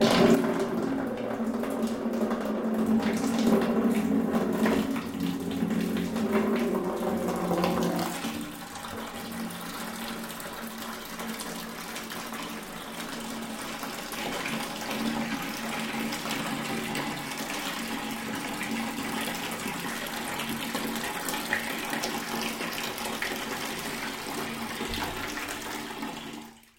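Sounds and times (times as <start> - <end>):
water in a bucket: 0.0 - 26.7.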